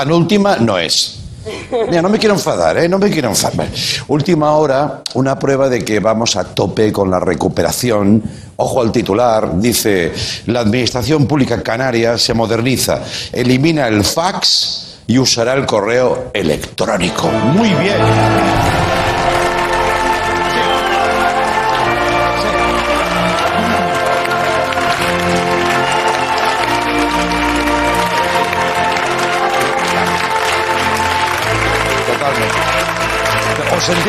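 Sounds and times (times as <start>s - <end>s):
speech: 0.0s - 19.0s, 33.8s - 34.0s
audience applause: 17.5s - 34.0s.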